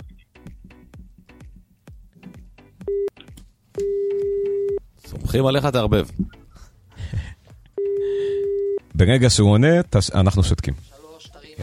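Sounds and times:
steady telephone tone: 0:03.8 - 0:04.8, 0:07.8 - 0:08.8
speech: 0:05.3 - 0:06.4, 0:09.0 - 0:10.9.

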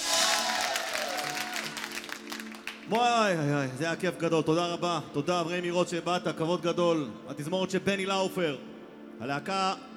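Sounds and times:
crowd cheering: 0:00.0 - 0:02.7
audience clapping at a live show: 0:00.0 - 0:03.2
speech: 0:02.9 - 0:09.9.

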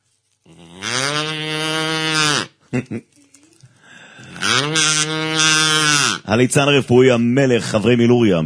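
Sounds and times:
man imitating a cow mooing: 0:00.5 - 0:02.5, 0:04.4 - 0:06.3
speech: 0:02.7 - 0:03.2, 0:06.3 - 0:08.4.

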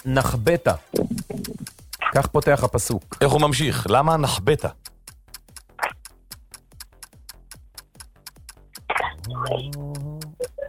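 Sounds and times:
speech: 0:00.0 - 0:04.9, 0:09.5 - 0:10.0
clock ticking as a quiz timer: 0:00.0 - 0:10.6.

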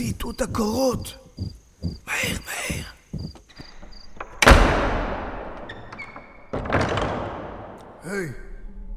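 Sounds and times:
speech: 0:00.0 - 0:02.9, 0:08.1 - 0:08.5
door slamming shut: 0:04.2 - 0:07.8.

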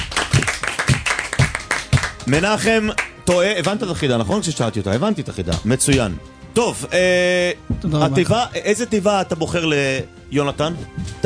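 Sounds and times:
rhythmic applause on a game show: 0:00.0 - 0:04.2
speech: 0:02.3 - 0:11.2.

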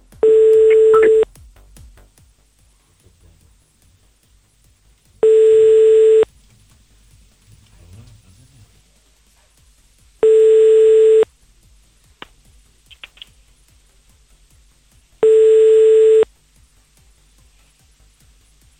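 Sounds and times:
ringback tone of an unanswered outgoing phone call: 0:00.2 - 0:01.2, 0:05.2 - 0:06.3, 0:10.2 - 0:11.2, 0:15.2 - 0:16.3.

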